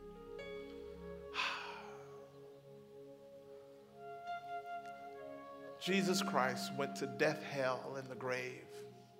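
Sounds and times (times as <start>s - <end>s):
sustained organ-like musical drone: 0.0s - 9.1s
room of people inhaling and exhaling together: 1.3s - 2.2s
speech: 5.8s - 8.9s.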